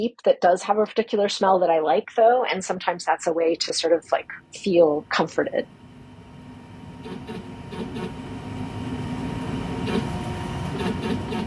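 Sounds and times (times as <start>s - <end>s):
speech: 0.0s - 5.8s
3D printer motors whirring: 7.0s - 11.4s.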